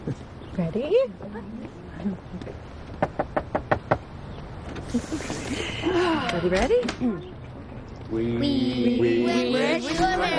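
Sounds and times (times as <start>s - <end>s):
speech: 0.1s - 2.9s, 4.9s - 7.4s, 8.1s - 10.3s
knocking on a door: 2.9s - 4.1s.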